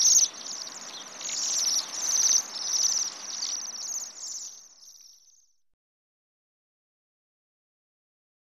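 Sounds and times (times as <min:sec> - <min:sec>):
Bohemian waxwings calling in high buzzy trills: 0:00.0 - 0:05.6.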